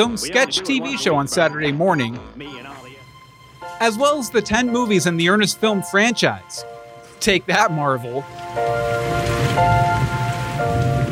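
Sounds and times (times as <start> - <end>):
speech: 0.0 - 2.7, 3.8 - 9.9
laughter: 0.0 - 3.0
steady dense rain pouring down: 3.0 - 11.1.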